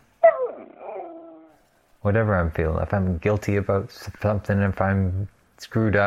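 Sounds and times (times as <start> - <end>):
dog whimpering: 0.2 - 1.6
speech: 2.0 - 6.0.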